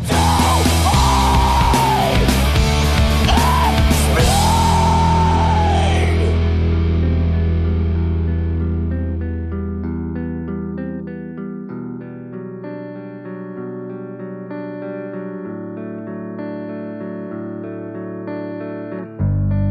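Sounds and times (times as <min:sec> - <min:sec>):
screamed vocals in an emo rock song: 0:00.0 - 0:07.2
dense distorted guitars: 0:00.0 - 0:19.6.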